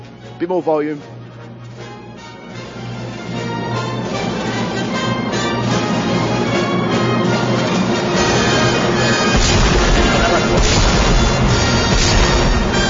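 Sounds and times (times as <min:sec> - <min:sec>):
full orchestra playing an overture with sustained brass and strings: 0:00.2 - 0:12.8
speech: 0:00.4 - 0:01.2
heavy booming cannon blasts: 0:09.3 - 0:12.8.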